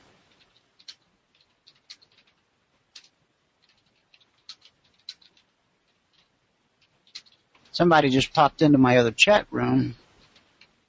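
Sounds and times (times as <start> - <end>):
keyboard keys clicking as someone types a message: 0.0 - 8.7, 9.4 - 10.8
speech: 7.8 - 10.0.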